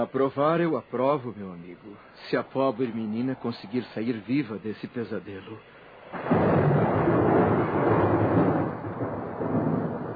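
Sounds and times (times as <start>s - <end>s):
speech: 0.0s - 6.8s
heavy rain: 6.1s - 10.1s
thunder rumbling: 6.1s - 10.1s.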